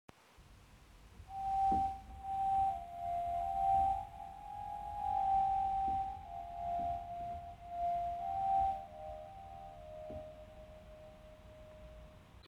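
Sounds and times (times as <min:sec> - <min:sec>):
organ Stopped Flute 4 stop drone: 0:01.3 - 0:12.1.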